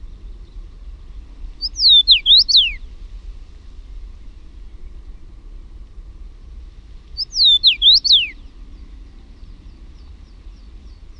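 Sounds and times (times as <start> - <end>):
Common rosefinch singing short whistled phrases: 1.6 - 2.8, 7.2 - 8.5.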